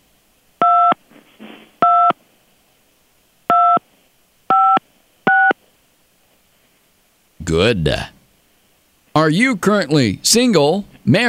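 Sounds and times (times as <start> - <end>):
soft rustle: 1.0 - 3.0, 3.8 - 4.2, 4.9 - 7.0
telephone keypad dual-tone beeps: 3.5 - 3.8, 4.5 - 5.5
speech: 7.5 - 8.2, 9.2 - 11.2.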